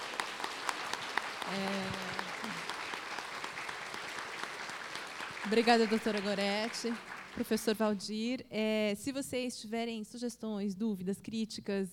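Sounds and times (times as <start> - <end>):
audience applauding guests at the close of a talk: 0.0 - 7.9
speech: 1.5 - 2.0, 5.5 - 11.9.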